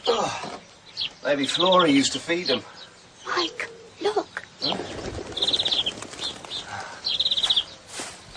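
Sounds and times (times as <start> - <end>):
speech: 0.1 - 4.9
wagtails fluttering wings: 4.6 - 8.2.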